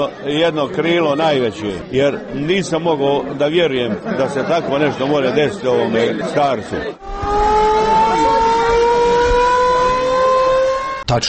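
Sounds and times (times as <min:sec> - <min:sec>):
laughter: 0:00.0 - 0:07.0
speech: 0:00.0 - 0:07.2
wartime civil defense sirens sounding the general danger alarm: 0:07.0 - 0:11.1.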